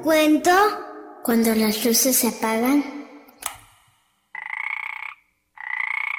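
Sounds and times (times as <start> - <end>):
speech: 0.0 - 3.5
toad croaking: 4.3 - 6.1.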